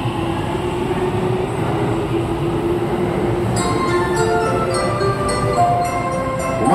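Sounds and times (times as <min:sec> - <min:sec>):
train rumbling: 0:00.0 - 0:06.7.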